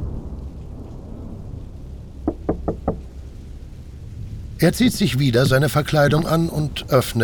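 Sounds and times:
rain: 0:00.0 - 0:07.2
storm rumble: 0:00.0 - 0:07.2
knocking on a wooden house door: 0:02.2 - 0:03.2
speech: 0:04.6 - 0:07.2.

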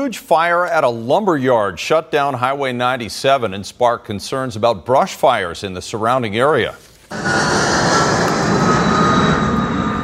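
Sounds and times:
speech: 0:00.0 - 0:07.4
air tanker aircraft engine roar overhead: 0:07.1 - 0:10.0.

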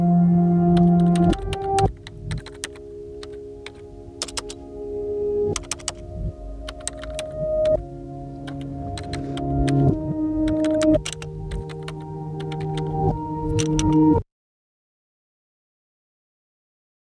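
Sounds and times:
humming drone: 0:00.0 - 0:14.2
typing on a keyboard: 0:00.8 - 0:04.6, 0:05.5 - 0:06.0, 0:06.7 - 0:07.8, 0:08.4 - 0:12.9, 0:13.5 - 0:14.1.

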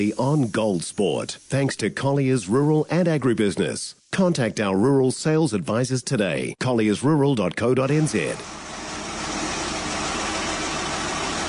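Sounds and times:
speech: 0:00.0 - 0:08.6
tractor engine idling: 0:08.0 - 0:11.4.

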